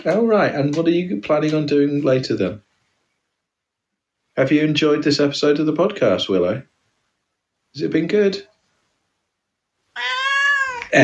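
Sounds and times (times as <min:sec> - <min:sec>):
speech: 0:00.0 - 0:02.7, 0:04.4 - 0:06.7, 0:07.7 - 0:08.5
cat meowing: 0:10.0 - 0:11.0.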